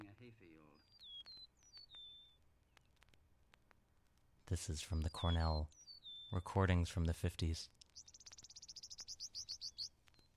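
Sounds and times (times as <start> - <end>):
speech: 0.2 - 1.1, 4.5 - 8.1
meadowlark calling in high thin chirps and trill: 0.6 - 2.4, 4.6 - 6.5, 7.8 - 10.3.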